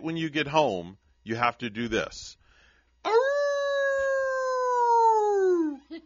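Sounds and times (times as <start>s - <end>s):
speech: 0.0s - 2.4s, 3.0s - 3.3s
person howling like a wolf: 3.1s - 5.8s.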